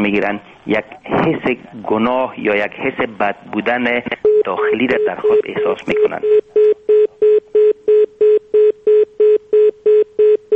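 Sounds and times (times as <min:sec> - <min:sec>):
speech: 0:00.0 - 0:06.7
electronic telephone line beeps after a call disconnects: 0:04.2 - 0:10.5.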